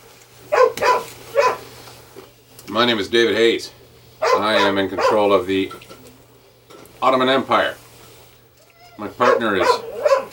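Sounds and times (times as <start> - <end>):
faint steady hum: 0.0 - 10.3
female dog barking and whining in agitation: 0.5 - 1.7, 4.2 - 5.3, 8.8 - 10.3
speech: 2.7 - 5.8, 7.0 - 7.8, 9.0 - 9.9.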